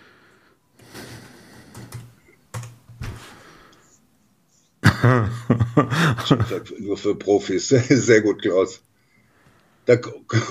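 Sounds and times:
typing on a computer keyboard: 1.7s - 3.0s
laughter: 4.8s - 6.8s
speech: 5.0s - 8.8s, 9.9s - 10.4s.

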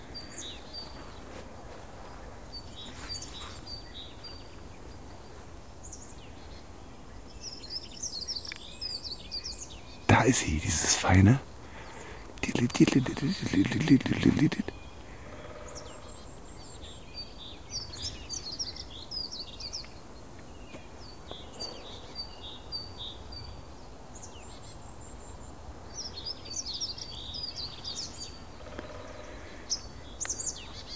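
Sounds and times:
tit scolding alarm calls: 10.1s - 14.8s
speech: 10.2s - 11.5s, 12.6s - 14.8s.

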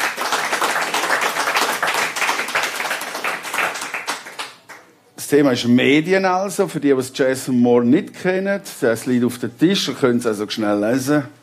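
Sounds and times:
crowd applauding: 0.0s - 4.9s
speech: 5.3s - 11.4s.

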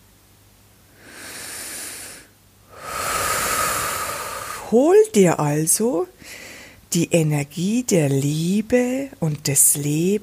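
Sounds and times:
deep breathing in and out during a breathing exercise: 0.9s - 4.7s, 6.2s - 6.8s
speech: 4.7s - 10.2s.

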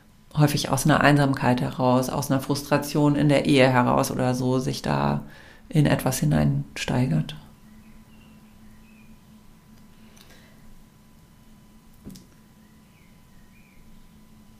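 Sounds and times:
speech: 0.4s - 7.4s
faint bird chirps outdoors: 7.5s - 9.6s, 12.4s - 14.5s.

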